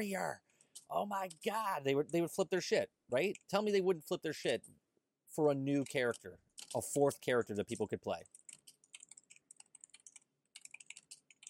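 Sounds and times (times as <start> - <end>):
speech: 0.0 - 8.4
keyboard typing: 0.6 - 1.6, 5.7 - 11.4.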